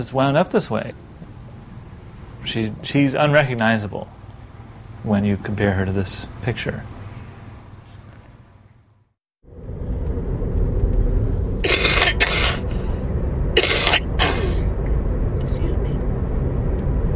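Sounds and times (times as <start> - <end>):
speech: 0.0 - 1.1, 2.4 - 4.2, 5.0 - 7.0
steady low rumble: 0.0 - 8.6, 9.4 - 17.1
person coughing harshly: 11.6 - 12.6, 13.6 - 14.7.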